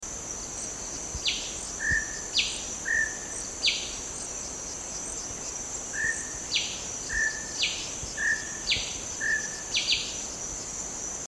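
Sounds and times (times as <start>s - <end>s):
steady high insect drone: 0.1s - 11.2s
greater racket-tailed drongo sharp descending and whistled calls: 1.1s - 4.3s, 5.9s - 10.3s.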